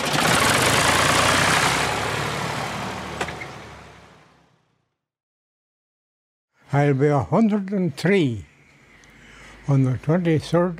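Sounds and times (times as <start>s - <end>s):
small red Volkswagen car engine idling: 0.0s - 4.2s
speech: 6.7s - 8.5s, 9.7s - 10.7s.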